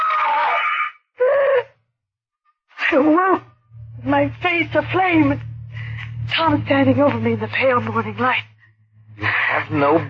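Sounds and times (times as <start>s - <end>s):
woman screaming in a nightmare: 0.0s - 1.7s
speech: 4.2s - 5.5s, 6.3s - 8.5s, 9.2s - 10.0s.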